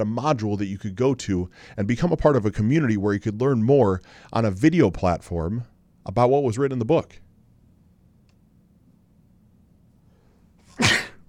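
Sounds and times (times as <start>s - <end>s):
speech: 0.0s - 7.2s
sneeze: 10.6s - 11.2s.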